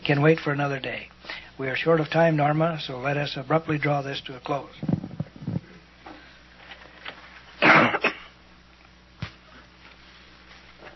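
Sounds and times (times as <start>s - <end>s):
speech: 0.1s - 5.0s
woman clearing throat: 7.6s - 8.4s
woman coughing harshly: 7.6s - 8.4s.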